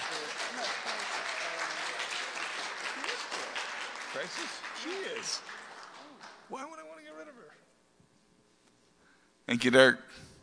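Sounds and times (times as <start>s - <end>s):
meeting audience clapping instead of voting on a resolution: 0.0s - 7.2s
speech: 4.2s - 5.6s, 6.5s - 6.8s, 9.5s - 10.3s.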